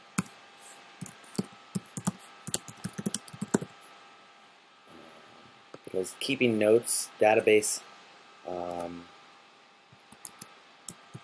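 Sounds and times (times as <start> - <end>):
notes being typed on a computer keyboard: 1.0 - 3.7, 10.2 - 11.0
speech: 6.0 - 7.9, 8.5 - 9.1.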